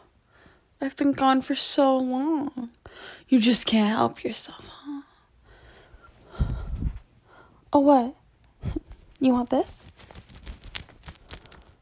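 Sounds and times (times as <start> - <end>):
speech: 0.8 - 4.8, 7.7 - 9.9
bunch of keys jangling: 9.2 - 11.8.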